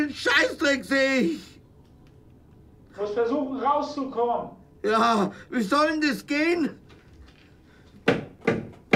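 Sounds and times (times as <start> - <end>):
speech: 0.0 - 1.5, 3.0 - 6.8
firm knocking on a door: 8.0 - 8.9.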